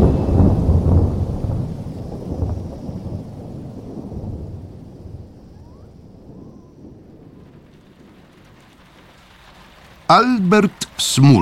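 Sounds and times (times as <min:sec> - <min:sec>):
distant thunder rumbling: 0:00.0 - 0:11.4
soft steady hiss of weather: 0:00.0 - 0:11.4
speech: 0:10.1 - 0:11.4.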